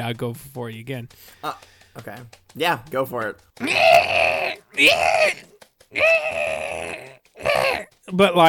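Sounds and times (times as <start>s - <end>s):
speech: 0.0s - 8.4s
person vocally imitating a harsh bat-like screech: 3.6s - 7.9s.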